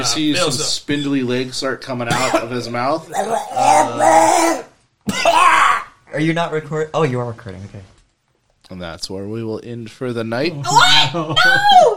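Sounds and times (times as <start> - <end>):
speech: 0.0 - 7.9, 8.7 - 11.9
person acting out a character's raspy coughing fit: 2.1 - 2.6, 5.1 - 5.5.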